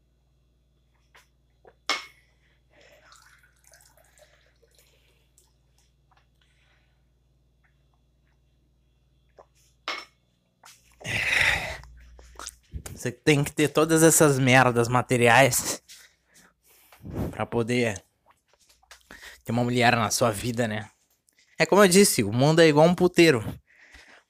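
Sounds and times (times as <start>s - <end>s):
person sipping water: 1.5s - 1.9s, 2.8s - 6.5s, 9.2s - 9.8s, 10.6s - 13.0s
speech: 13.0s - 15.7s, 17.6s - 18.1s, 19.5s - 21.0s, 21.6s - 23.6s.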